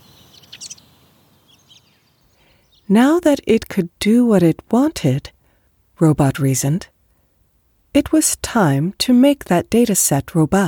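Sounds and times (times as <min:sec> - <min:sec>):
crow calling: 0:00.0 - 0:02.0
speech: 0:02.9 - 0:05.4, 0:06.0 - 0:06.9, 0:07.9 - 0:10.6.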